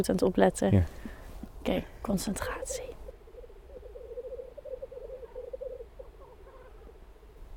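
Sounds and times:
speech: 0:00.0 - 0:01.0, 0:01.6 - 0:02.9
background hiss: 0:00.0 - 0:07.5
black grouse bubbling cooing song: 0:03.1 - 0:07.4.

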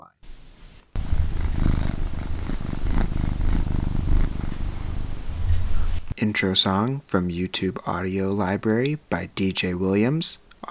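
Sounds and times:
cat purring: 0:00.2 - 0:06.2
speech: 0:06.2 - 0:10.6.

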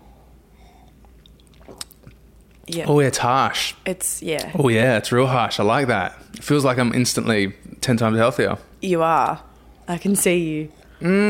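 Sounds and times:
low hum: 0:00.0 - 0:11.2
person sipping a ginger shot: 0:00.5 - 0:02.7
speech: 0:01.7 - 0:01.9, 0:02.7 - 0:11.2.

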